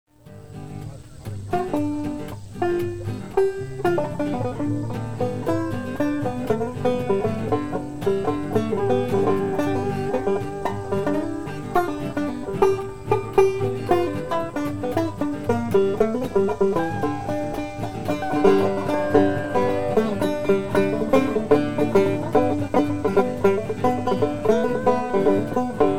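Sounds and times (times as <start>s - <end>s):
dobro: 0.1s - 25.9s
banjo: 0.2s - 25.9s
slide guitar: 0.2s - 25.9s.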